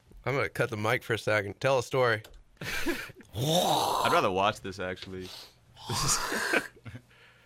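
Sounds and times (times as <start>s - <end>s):
speech: 0.2s - 7.0s
person clearing throat during an illness: 5.8s - 6.8s.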